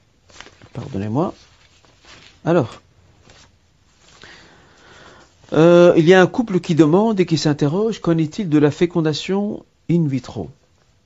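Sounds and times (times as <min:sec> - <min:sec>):
paper sheets being shuffled into order: 0:00.0 - 0:05.7
speech: 0:00.8 - 0:01.5, 0:02.4 - 0:02.8, 0:05.5 - 0:11.0.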